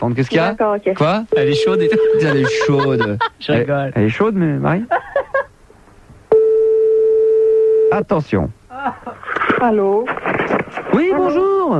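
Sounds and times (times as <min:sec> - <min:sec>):
speech: 0:00.0 - 0:05.1, 0:08.0 - 0:11.7
electronic telephone keypad beep: 0:01.3 - 0:03.0
steady sustained telephone ringing tone: 0:01.3 - 0:03.0, 0:06.3 - 0:07.9
laughter: 0:01.7 - 0:03.4, 0:04.9 - 0:05.5.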